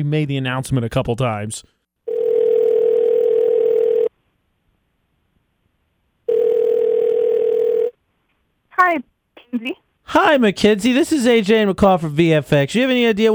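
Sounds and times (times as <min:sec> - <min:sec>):
speech: 0:00.0 - 0:01.8, 0:08.8 - 0:13.3
electronic telephone tone as a phone call is placed: 0:02.1 - 0:04.1, 0:06.3 - 0:07.9
voice answering a phone call: 0:08.8 - 0:11.6.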